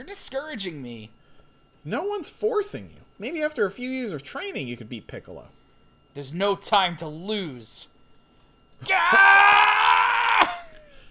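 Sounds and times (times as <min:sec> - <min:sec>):
speech: 0:00.0 - 0:01.2, 0:01.8 - 0:07.9, 0:08.8 - 0:09.6
loud strained scream: 0:08.8 - 0:10.8.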